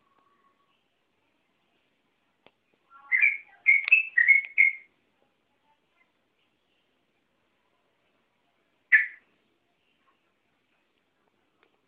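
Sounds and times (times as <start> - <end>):
Oriental magpie-robin singing whistled notes: 2.9 - 4.9, 8.9 - 9.2.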